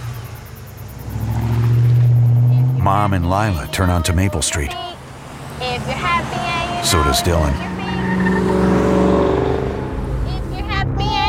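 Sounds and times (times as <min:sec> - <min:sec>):
truck engine revving as the truck pulls away: 0:00.0 - 0:11.2
speech: 0:02.8 - 0:04.9, 0:06.8 - 0:08.8.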